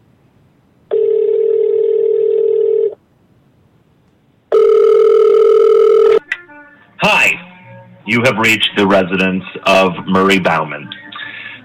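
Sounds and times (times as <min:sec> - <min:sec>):
telephone ringing tones after a number is dialed: 0:00.9 - 0:03.0, 0:04.5 - 0:06.2
speech: 0:08.1 - 0:11.0.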